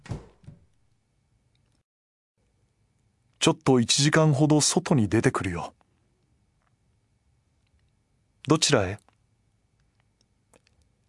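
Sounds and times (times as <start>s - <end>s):
drawer sliding shut: 0.0s - 0.6s
dull wooden thuds of a drawer closing: 0.0s - 0.7s
speech: 3.4s - 5.8s, 8.4s - 9.0s.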